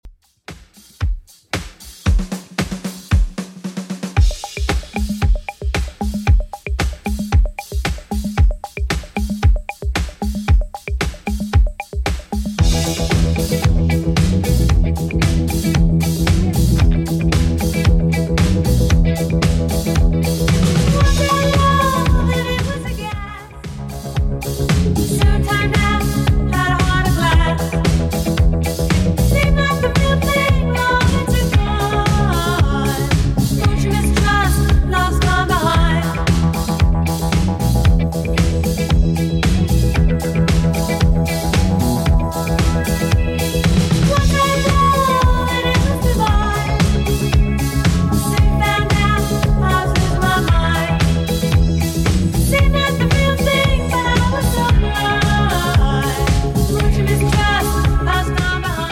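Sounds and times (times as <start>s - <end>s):
clean seventies drum loop: 0.0s - 58.8s.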